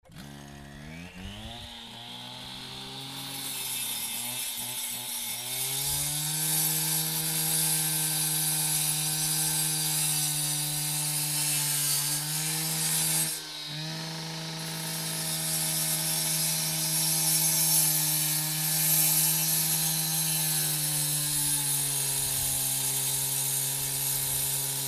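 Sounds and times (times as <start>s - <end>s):
cut-off saw cutting: 0.0s - 24.8s.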